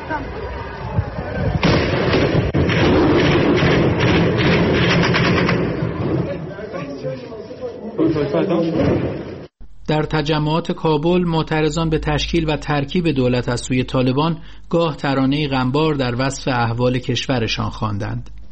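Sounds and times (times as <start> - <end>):
speech: 0.1 - 0.8, 8.4 - 9.3, 9.9 - 18.4
gunfire at a street protest: 1.6 - 6.2.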